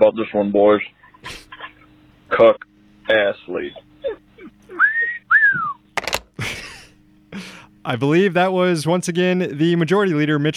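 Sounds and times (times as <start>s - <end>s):
speech: 0.0s - 1.5s, 2.3s - 4.2s, 7.4s - 10.5s
laughter: 0.8s - 2.5s, 3.5s - 5.7s, 6.4s - 7.7s
wolf whistle: 4.8s - 5.8s.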